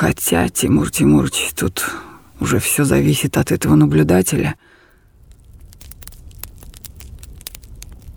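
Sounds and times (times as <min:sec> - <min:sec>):
speech: 0:00.0 - 0:04.7
bonfire crackling in a forest clearing: 0:00.0 - 0:08.1.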